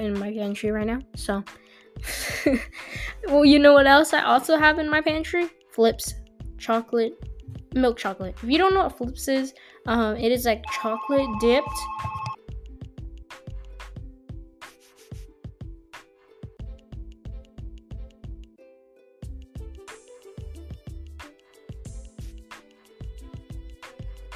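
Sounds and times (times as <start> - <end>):
speech: 0.0 - 12.2
phone ringing with a beat-driven musical ringtone with thumping bass: 10.6 - 12.4.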